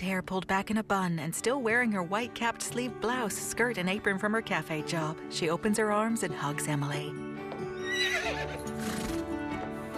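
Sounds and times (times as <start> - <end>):
speech: 0.0 - 7.4
white horse harnessed to a carriage whinnying: 7.8 - 9.3.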